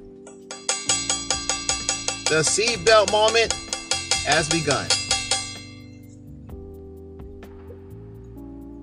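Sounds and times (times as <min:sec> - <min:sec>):
bell rung rapidly: 0:00.3 - 0:06.0
speech: 0:02.3 - 0:03.6, 0:04.2 - 0:05.0.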